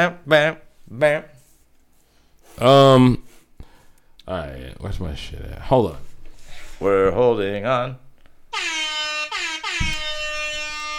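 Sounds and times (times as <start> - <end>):
speech: 0.0 - 1.3, 2.6 - 3.2, 4.3 - 6.1, 6.8 - 8.7
loud air horn blasts: 8.5 - 10.9
low thump: 9.8 - 10.2.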